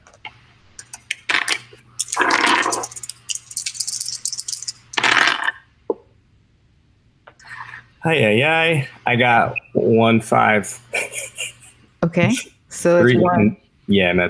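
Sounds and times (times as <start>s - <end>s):
three six-sided dice rattling and clattering across a hard surface: 0.8s - 5.5s
speech: 8.0s - 10.8s, 12.0s - 14.2s
laughter: 10.7s - 12.5s.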